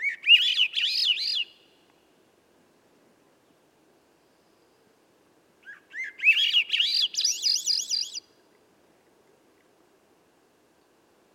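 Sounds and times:
Swainson's thrush spiralling whistled song at dusk in a red alder: 0:00.0 - 0:01.6, 0:05.9 - 0:08.2.

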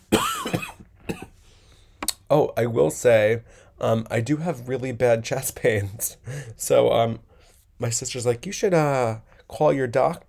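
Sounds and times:
person coughing: 0:00.1 - 0:01.4
speech: 0:02.3 - 0:10.2.

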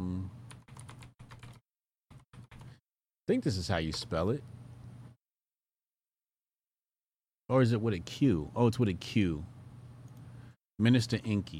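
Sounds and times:
typing a search on a computer keyboard: 0:00.5 - 0:02.8
speech: 0:03.3 - 0:04.6, 0:07.5 - 0:09.6, 0:10.8 - 0:11.5.

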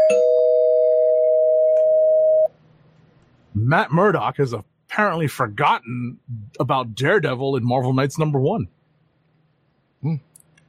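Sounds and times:
spoiler-alert bell sound effect with single steady electronic tone: 0:00.0 - 0:02.5
speech: 0:03.7 - 0:08.8, 0:10.0 - 0:10.3.

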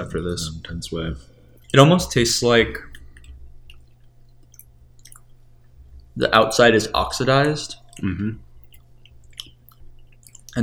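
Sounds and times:
speech: 0:00.0 - 0:02.9, 0:06.2 - 0:08.4
low steady hum: 0:00.0 - 0:10.6
wet chewing of cinnamon between the molars: 0:01.4 - 0:02.0, 0:02.8 - 0:06.2, 0:07.4 - 0:10.6.

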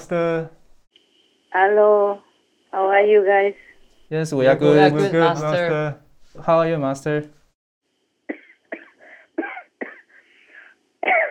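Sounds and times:
speech: 0:00.1 - 0:00.6, 0:01.5 - 0:07.4
person coughing from an allergy: 0:08.3 - 0:11.2.

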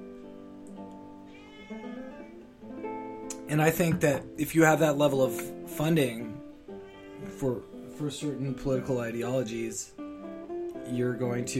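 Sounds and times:
cat meowing: 0:01.2 - 0:02.5, 0:06.7 - 0:07.4
speech: 0:03.5 - 0:06.3, 0:07.4 - 0:10.0, 0:10.9 - 0:11.5.

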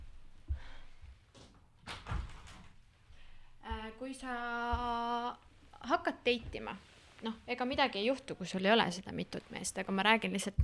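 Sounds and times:
firmer door thud: 0:01.8 - 0:02.7
speech: 0:04.1 - 0:10.6.

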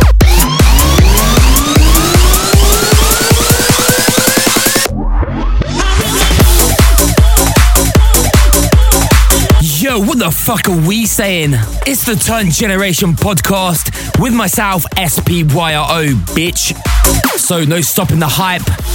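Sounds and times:
loud rapid pounding beats: 0:00.0 - 0:04.9, 0:05.7 - 0:18.9
siren wail: 0:00.2 - 0:04.9
speech: 0:10.3 - 0:18.9.

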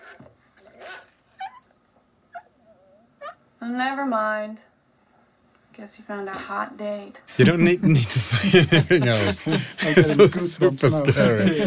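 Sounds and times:
dog giving short high yips and whimpers: 0:00.8 - 0:03.5
speech: 0:03.6 - 0:04.7, 0:05.8 - 0:11.6
laughter: 0:07.3 - 0:11.6.

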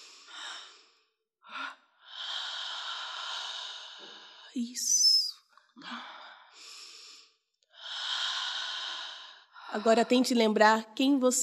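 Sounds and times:
person breathing deeply: 0:00.0 - 0:04.6, 0:05.8 - 0:09.9
speech: 0:04.6 - 0:05.1, 0:05.8 - 0:06.1, 0:09.8 - 0:11.4.

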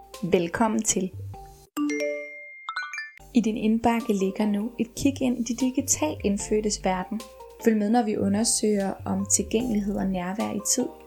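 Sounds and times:
speech: 0:00.2 - 0:01.3, 0:03.4 - 0:11.0
bright electronic message notification chime: 0:01.8 - 0:03.2.

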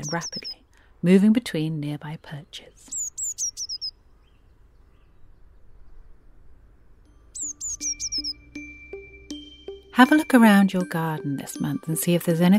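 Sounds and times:
bird trembling trill: 0:00.0 - 0:00.6, 0:02.9 - 0:03.9, 0:07.3 - 0:08.7
speech: 0:00.1 - 0:03.0, 0:10.0 - 0:12.5.

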